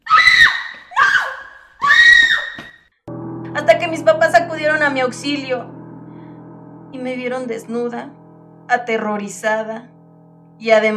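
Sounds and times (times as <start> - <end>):
woman screaming shrilly while showering: 0.0 - 2.6
speech: 3.6 - 5.8, 7.0 - 9.9, 10.6 - 10.9.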